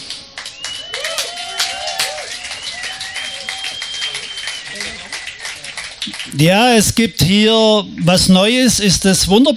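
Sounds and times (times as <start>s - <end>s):
audience clapping: 0.0s - 7.0s
voices whooping: 0.4s - 6.2s
speech: 6.2s - 9.5s.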